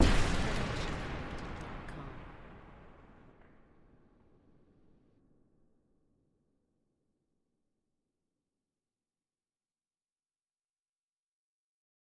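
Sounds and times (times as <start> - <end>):
debris from explosion: 0.0 - 2.9
explosion blast: 0.0 - 3.8.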